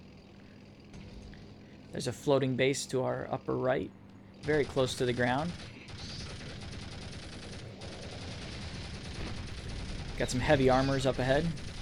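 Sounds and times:
speech: 0:01.9 - 0:05.8, 0:10.2 - 0:11.6
video game gunfire at heavily armored enemies: 0:04.4 - 0:11.8.

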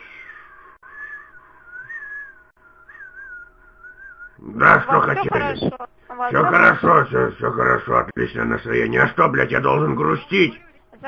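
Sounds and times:
whistled tune in telephone hold music: 0:00.2 - 0:04.4
laughter: 0:04.4 - 0:07.7
speech: 0:04.4 - 0:11.0.

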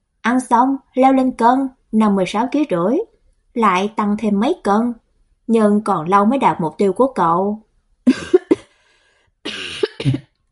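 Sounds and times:
speech: 0:00.3 - 0:08.3
dry coughing: 0:08.1 - 0:08.8, 0:09.5 - 0:10.3.

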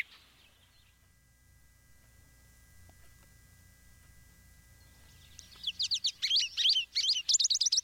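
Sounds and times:
American goldfinch high-pitched twittering calls: 0:04.8 - 0:07.8.

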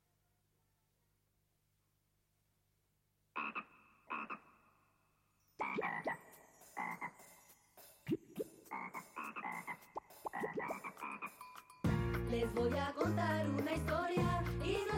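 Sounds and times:
frog croaking in short raspy pulses: 0:03.4 - 0:07.4, 0:08.1 - 0:11.5
speech: 0:12.3 - 0:14.8.

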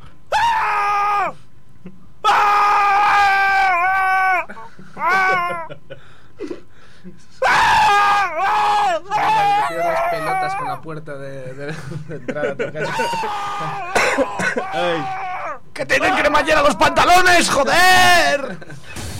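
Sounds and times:
man screaming as a sound effect: 0:00.3 - 0:01.4, 0:02.2 - 0:05.7, 0:07.4 - 0:10.8, 0:12.8 - 0:18.4
laughter: 0:05.7 - 0:07.5
speech: 0:15.8 - 0:18.6.

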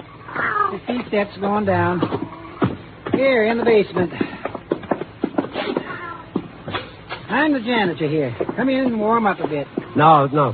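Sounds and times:
black cat meowing: 0:00.2 - 0:00.8, 0:05.6 - 0:06.4
speech: 0:00.7 - 0:02.3, 0:03.2 - 0:04.3, 0:07.3 - 0:10.5.

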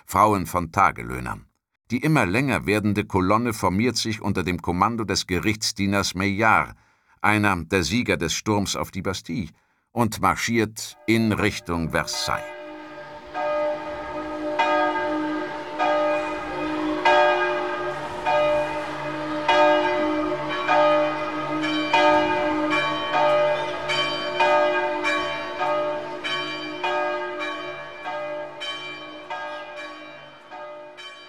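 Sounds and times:
speech: 0:00.1 - 0:12.6
church storm bells ringing as an alarm: 0:11.0 - 0:31.2.

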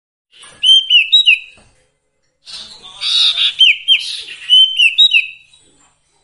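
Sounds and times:
sirtu songbird whistling and chattering: 0:00.6 - 0:01.6, 0:02.6 - 0:05.5.

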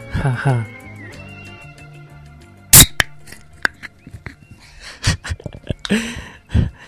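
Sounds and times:
speech: 0:00.2 - 0:00.8
beer can popping open: 0:02.8 - 0:03.8
laughter: 0:03.2 - 0:06.8.

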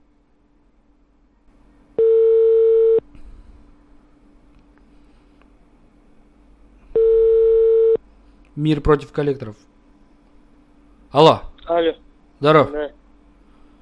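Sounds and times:
faint low hum: 0:00.0 - 0:13.7
telephone ringback tone as a call is placed: 0:02.0 - 0:03.0, 0:07.0 - 0:08.0
speech: 0:08.6 - 0:09.7, 0:11.1 - 0:13.0.

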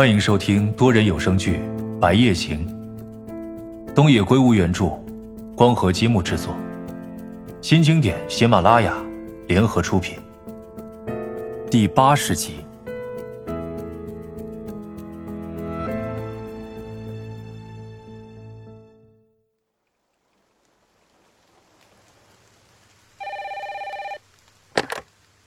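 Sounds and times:
speech: 0:00.0 - 0:02.8, 0:04.0 - 0:05.0, 0:05.6 - 0:06.6, 0:07.6 - 0:10.2, 0:11.7 - 0:12.6
music: 0:00.0 - 0:19.6
telephone ringing in a short buzzing electronic burst: 0:23.2 - 0:24.2.

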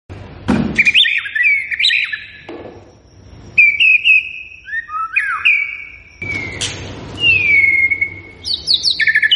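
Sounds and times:
white-rumped shama singing varied whistled phrases: 0:00.8 - 0:02.4, 0:03.5 - 0:09.3.

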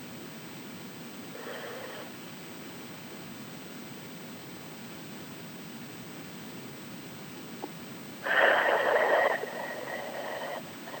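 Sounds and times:
slow exhale during a breathing exercise: 0:01.3 - 0:02.2, 0:08.2 - 0:10.9.

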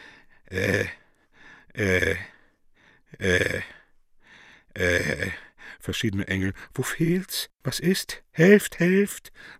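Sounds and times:
old man groaning and moaning hoarsely and inarticulately: 0:00.4 - 0:02.5, 0:03.1 - 0:03.9, 0:04.7 - 0:05.6
speech: 0:00.5 - 0:01.0, 0:01.8 - 0:02.3, 0:03.2 - 0:03.6, 0:05.9 - 0:09.5.

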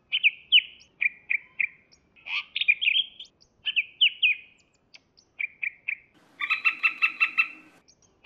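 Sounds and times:
leafbird singing clear chirped phrases: 0:00.1 - 0:08.2
leafbird harsh buzzy rattle: 0:06.2 - 0:07.8.

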